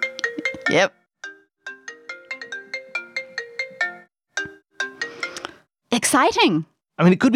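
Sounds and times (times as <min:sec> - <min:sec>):
generic iPhone ringtone with marimba-like notes: 0:00.0 - 0:05.6
speech: 0:00.6 - 0:01.0, 0:06.0 - 0:07.3.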